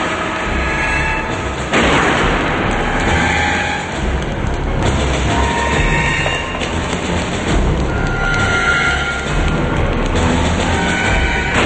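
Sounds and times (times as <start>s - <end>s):
dense rumbling background in a parking garage: 0.0s - 11.6s
gunshots in a parking garage during a chase: 1.7s - 2.9s.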